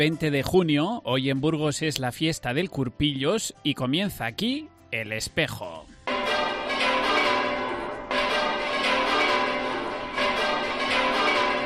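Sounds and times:
speech: 0.0s - 6.0s
monastery church bells pealing: 6.1s - 11.6s.

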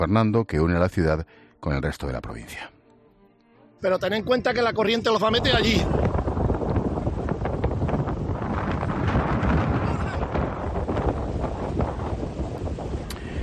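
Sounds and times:
speech: 0.0s - 2.7s, 3.8s - 6.2s
strong wind buffeting the microphone: 4.2s - 13.4s.

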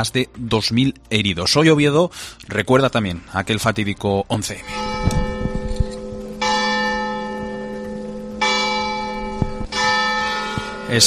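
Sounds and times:
speech: 0.0s - 5.2s
church bells tolling at noon: 4.4s - 11.0s.

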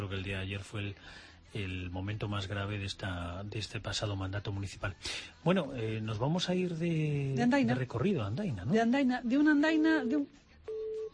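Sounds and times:
speech: 0.1s - 10.8s
warbling telephone-line tone from malfunctioning phones: 10.0s - 11.1s.

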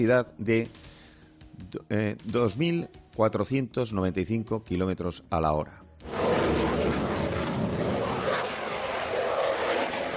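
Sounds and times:
speech: 0.0s - 0.9s, 1.6s - 5.9s
Eurofighter fighter jet of the Spanish Air Force flying at Morón de la Frontera air base: 6.0s - 10.1s.

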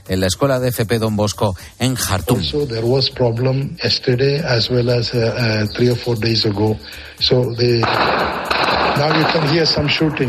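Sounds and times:
speech: 0.1s - 10.2s
loud rapid gunshots: 7.8s - 10.2s.

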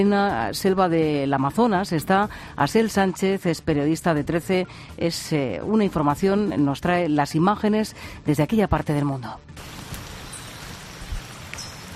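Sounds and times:
speech: 0.0s - 9.8s
rain falling in the Peruvian Amazon rainforest: 9.6s - 11.9s
faint bird chirps: 10.2s - 11.9s.

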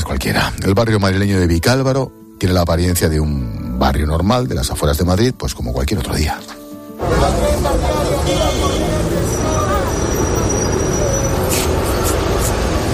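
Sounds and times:
speech: 0.2s - 8.4s
murmur of people's voices: 7.0s - 11.3s
traffic rumble from passing cars and buses: 7.0s - 12.9s.

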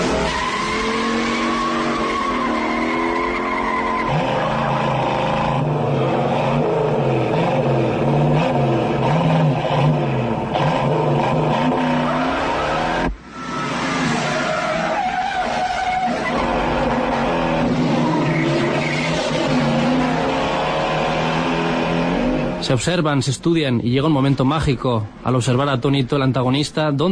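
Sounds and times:
tire squeal: 0.0s - 6.7s, 10.6s - 22.5s
muscle car engines with rough carburetor roaring and revving: 0.0s - 27.0s
speech: 22.7s - 27.0s.

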